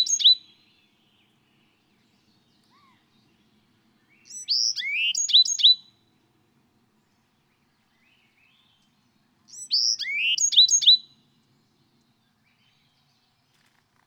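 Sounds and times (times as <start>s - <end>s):
bird whistling and twittering: 0.0s - 0.5s, 4.2s - 5.9s, 9.5s - 11.2s.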